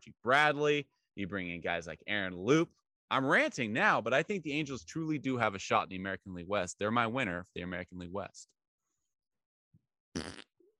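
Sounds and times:
speech: 0.0s - 8.6s
buzzy fart noise: 10.2s - 10.5s.

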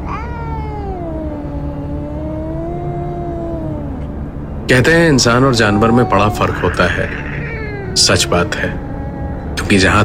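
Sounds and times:
boy imitating a cat meow: 0.0s - 4.0s, 5.7s - 9.5s
low constant rumble: 0.0s - 10.0s
speech: 4.7s - 7.2s, 8.0s - 8.8s, 9.7s - 10.0s.

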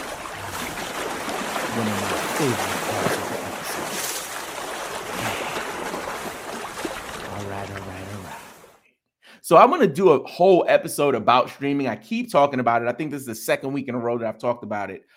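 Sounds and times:
flowing water stream: 0.0s - 8.8s
speech: 1.8s - 3.1s, 9.5s - 15.1s.

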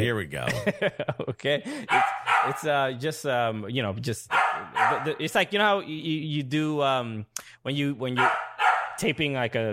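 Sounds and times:
speech: 0.1s - 8.4s, 9.0s - 9.7s
dog barking loudly with drawn-out yowling barks: 1.8s - 2.7s, 4.3s - 5.2s, 8.2s - 9.0s.

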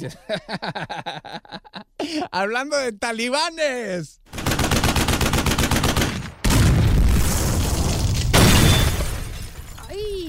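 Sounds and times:
laughter: 0.0s - 2.3s
speech: 0.0s - 4.8s
automatic gunfire: 4.3s - 6.7s
grenade explosion sound effect: 6.0s - 9.5s.

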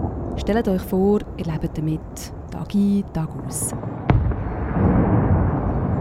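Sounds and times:
speech: 0.4s - 4.0s
gunshot with rolling echo at the Swiss Army firing range at Wallenstadt: 1.2s - 5.9s.

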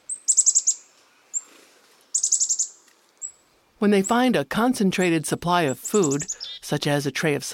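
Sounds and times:
chickadee calls: 0.0s - 3.4s, 5.7s - 6.9s
speech: 3.8s - 7.5s.

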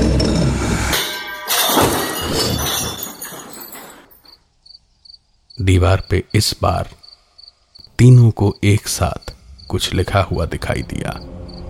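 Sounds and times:
glass smashing against a wall: 0.2s - 4.4s
glass shards scattering and tinkling across the room: 1.0s - 4.4s
speech: 5.6s - 7.0s, 8.0s - 11.4s.

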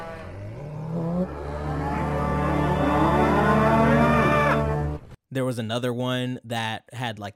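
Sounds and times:
robot making a synthetic cow moo: 0.0s - 4.8s
speech: 5.3s - 7.3s.

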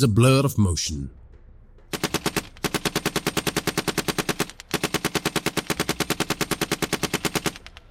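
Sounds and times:
speech: 0.0s - 1.2s
machine gun firing in rapid bursts: 1.9s - 7.8s.

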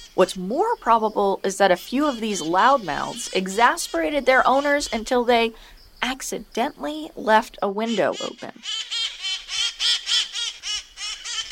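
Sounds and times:
speech: 0.2s - 9.0s
wild parrots squawking: 1.8s - 5.6s, 7.8s - 11.5s.

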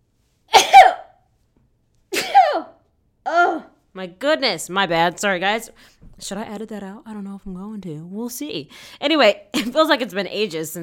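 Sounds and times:
person sneezing: 0.5s - 1.2s, 2.1s - 2.8s
speech: 4.0s - 10.8s.

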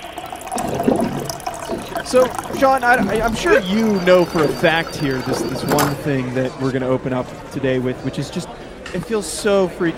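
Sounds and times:
water pouring into a cup: 0.0s - 6.1s
speech: 2.1s - 9.9s.

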